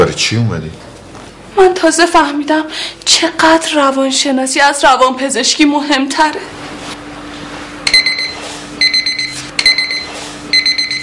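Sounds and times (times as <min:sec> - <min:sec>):
speech: 0:00.1 - 0:00.9, 0:01.6 - 0:06.7
alarm clock ringing with shrill electronic beeps: 0:07.9 - 0:11.0.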